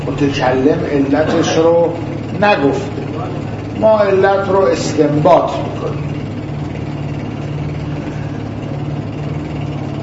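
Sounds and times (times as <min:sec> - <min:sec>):
rough harsh-sounding motorcycle engine idling: 0:00.0 - 0:10.0
speech: 0:00.2 - 0:06.1.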